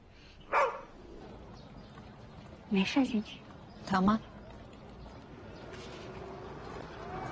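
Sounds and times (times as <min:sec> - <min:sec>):
dog bark: 0:00.5 - 0:00.9
speech: 0:02.7 - 0:04.3.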